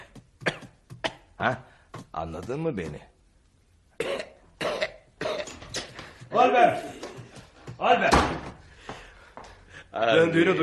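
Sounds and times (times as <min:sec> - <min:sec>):
person coughing: 0:00.4 - 0:01.4, 0:04.0 - 0:05.8
speech: 0:01.4 - 0:03.1, 0:06.4 - 0:07.0, 0:07.8 - 0:08.5, 0:10.0 - 0:10.6.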